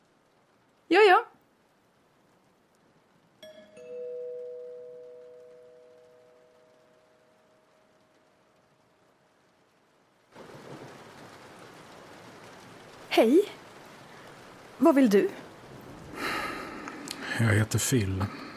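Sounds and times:
heavy storm of pouring rain: 0.0s - 18.5s
long ringing two-tone chime: 3.4s - 8.0s
speech: 13.2s - 13.6s, 14.8s - 15.4s, 17.4s - 18.4s.

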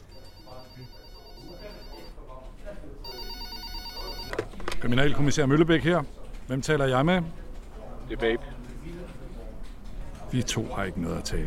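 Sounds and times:
telephone ringing with electronic trill during outgoing call: 0.0s - 2.2s, 3.0s - 4.6s
speech: 4.8s - 7.4s, 8.1s - 9.0s, 10.3s - 11.4s.

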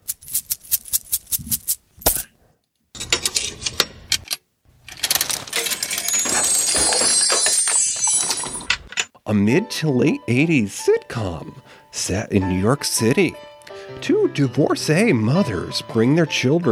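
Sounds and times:
metallic coins rattling in a bag of magic coins: 0.0s - 2.2s, 4.9s - 9.0s
speech: 9.3s - 16.7s.

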